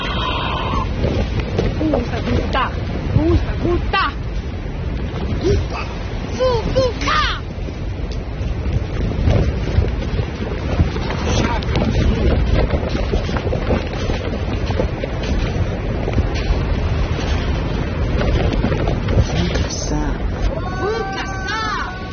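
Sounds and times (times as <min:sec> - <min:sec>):
high warbling cry: 0:00.0 - 0:00.9
strong wind roaring across a high rocky plateau: 0:00.0 - 0:22.1.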